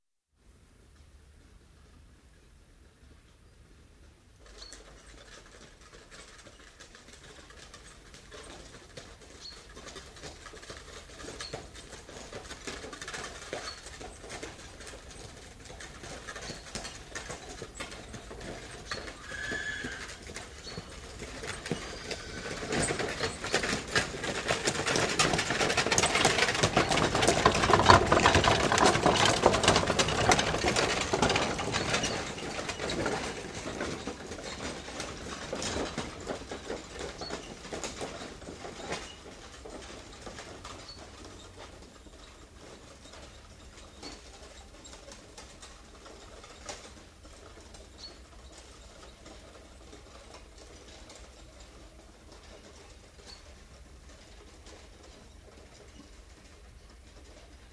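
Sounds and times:
horse and cart passing at a walk: 0.8 - 57.7.

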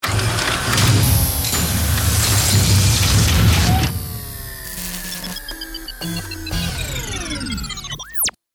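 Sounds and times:
electric digital power up: 0.0 - 8.4
mechanical electric digital robot transforming: 0.1 - 8.4.

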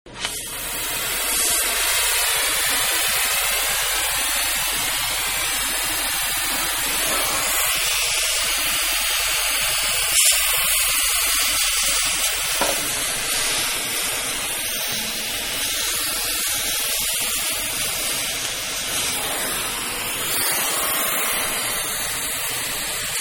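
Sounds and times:
acetylene welding torch: 0.1 - 23.1.

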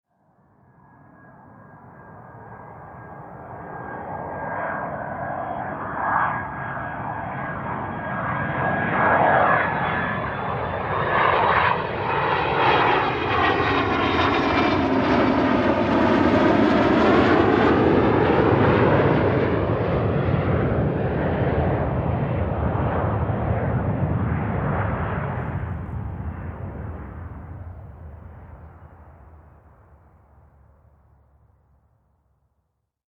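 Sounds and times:
jet aircraft flying by in mid flight: 0.9 - 31.2.

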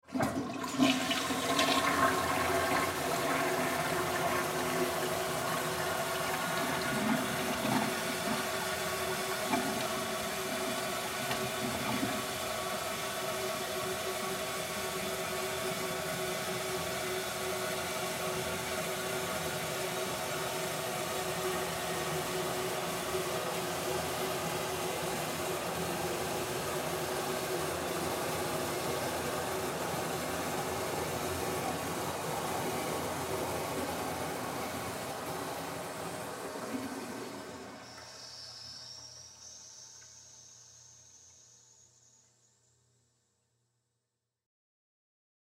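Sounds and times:
long drain of public restroom toilet: 0.0 - 12.6, 33.5 - 38.7
public restroom toilet flushing: 0.0 - 40.4.

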